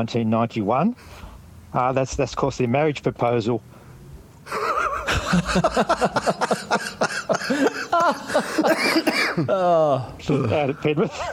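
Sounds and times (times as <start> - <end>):
speech: 0.0 - 3.8, 4.5 - 4.7, 5.3 - 11.3
laughter: 4.5 - 11.3
person coughing from a chest infection: 6.4 - 9.6.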